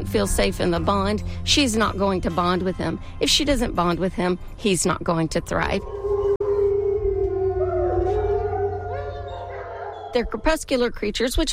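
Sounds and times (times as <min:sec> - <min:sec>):
speech: 0:00.1 - 0:06.0, 0:10.2 - 0:11.5
sustained wavering animal howl with overlapping voices in chorus: 0:05.8 - 0:10.6.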